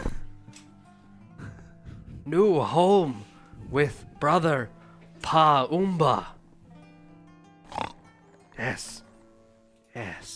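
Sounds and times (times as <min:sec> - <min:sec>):
pink pig grunting: 0:01.4 - 0:02.7, 0:07.6 - 0:08.1
speech: 0:02.3 - 0:06.4, 0:08.6 - 0:09.0, 0:10.0 - 0:10.3.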